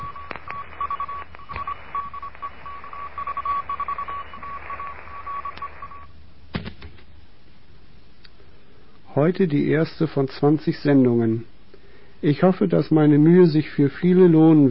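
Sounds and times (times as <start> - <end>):
hissy crackly radio static: 0.0 - 6.0
Morse code tones sent as a Morse lesson for beginners: 0.0 - 6.1
speech: 9.2 - 11.5, 12.2 - 14.7.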